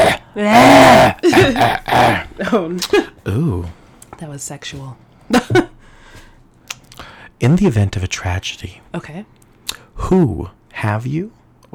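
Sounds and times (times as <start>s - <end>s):
loud rasping cough with gravelly throat-clearing: 0.0s - 2.3s
speech: 0.4s - 5.7s, 7.4s - 9.4s, 10.0s - 11.7s.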